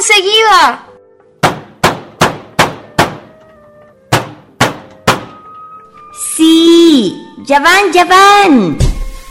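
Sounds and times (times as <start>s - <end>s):
speech: 0.1s - 0.8s, 7.0s - 8.9s
knocking on a door: 1.4s - 3.3s, 4.1s - 5.3s.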